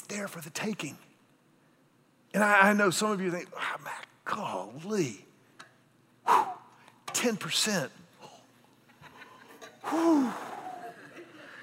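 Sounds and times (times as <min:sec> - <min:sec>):
speech: 0:00.1 - 0:01.1, 0:02.3 - 0:05.3, 0:07.2 - 0:08.0, 0:09.9 - 0:10.5
person gasping to catch their breath: 0:09.8 - 0:10.9
laughter: 0:10.6 - 0:11.6.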